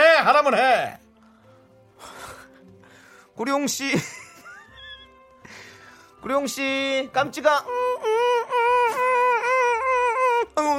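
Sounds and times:
speech: 0.2s - 1.0s, 3.4s - 4.2s, 6.2s - 8.2s, 10.6s - 10.7s
baby wailing with a high-pitched sustained cry and gasping breaths: 7.6s - 10.7s.

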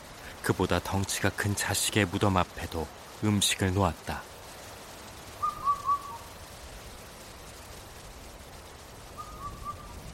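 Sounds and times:
steady hiss: 0.0s - 10.1s
speech: 0.5s - 4.3s
Indian cuckoo giving clear whistled notes: 5.4s - 6.3s, 9.1s - 10.0s.

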